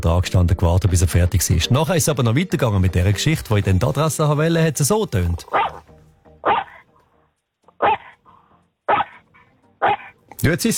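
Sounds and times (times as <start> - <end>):
speech: 0.0 - 5.7, 10.4 - 10.7
dog barking: 5.5 - 5.8, 6.4 - 6.9, 7.7 - 8.2, 8.9 - 10.2.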